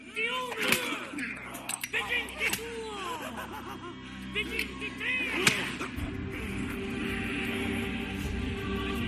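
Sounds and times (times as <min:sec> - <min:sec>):
person groaning and crying out: 0:00.2 - 0:06.6
laughter: 0:00.2 - 0:09.0
whip lashes cracking in a film scene: 0:00.5 - 0:01.2, 0:05.4 - 0:05.9.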